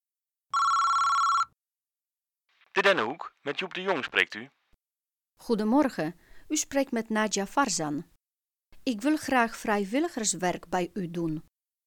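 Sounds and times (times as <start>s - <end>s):
electronic telephone ring of a call placed to a care home: 0.5s - 1.6s
speech: 2.8s - 4.6s, 5.4s - 8.1s, 8.8s - 11.5s.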